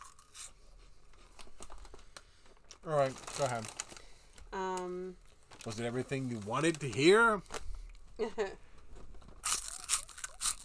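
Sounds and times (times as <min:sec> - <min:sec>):
person eating a crunchy spicy snack: 0:00.0 - 0:00.6, 0:09.4 - 0:10.6
speech: 0:02.8 - 0:03.8, 0:04.5 - 0:07.6, 0:08.2 - 0:08.6.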